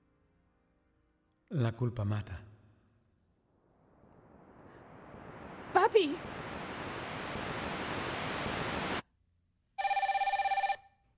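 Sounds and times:
speech: 1.5 - 2.5, 5.9 - 6.6
loud static-like hiss: 3.8 - 9.0
electronic telephone bell ringing: 9.8 - 11.0.

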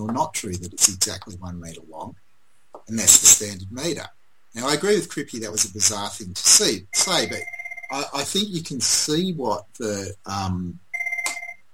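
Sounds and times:
speech: 0.0 - 2.2, 2.9 - 10.8
phone ringing with electronic tone: 6.9 - 8.3, 10.9 - 11.7.

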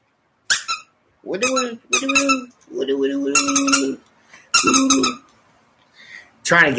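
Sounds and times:
squeaky dog toy being squeezed: 0.5 - 2.5, 3.4 - 5.2
speech: 1.2 - 5.2, 6.5 - 6.7.

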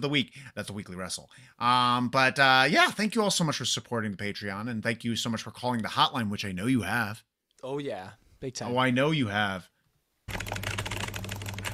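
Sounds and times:
speech: 0.0 - 9.7, 10.3 - 10.7
typewriter keys clacking: 10.3 - 11.7.

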